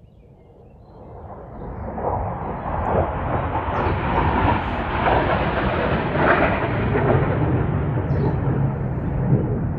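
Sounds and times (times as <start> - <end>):
fighter jets roaring overhead: 1.9 - 9.7.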